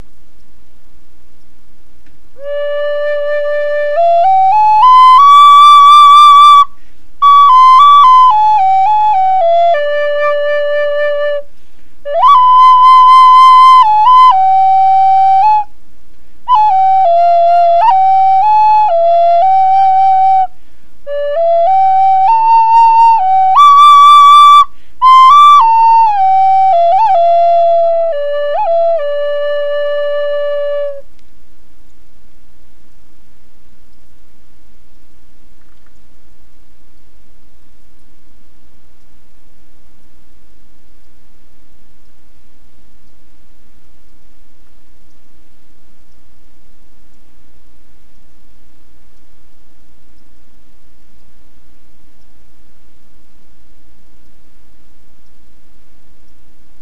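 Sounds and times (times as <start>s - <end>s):
high flutes in D: 2.4s - 15.8s, 16.4s - 31.1s.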